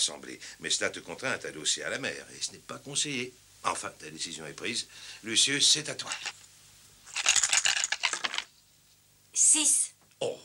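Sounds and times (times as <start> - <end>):
speech: 0.0 - 6.4, 9.4 - 10.4
dice rolled in a board game: 6.1 - 6.4, 7.1 - 8.6.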